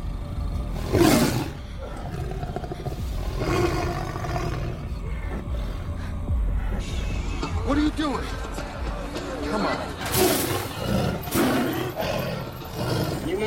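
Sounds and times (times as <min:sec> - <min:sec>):
caged tiger roaring: 0:00.0 - 0:05.4, 0:10.0 - 0:13.4
low rumbling background: 0:00.0 - 0:13.4
speech: 0:08.0 - 0:08.4.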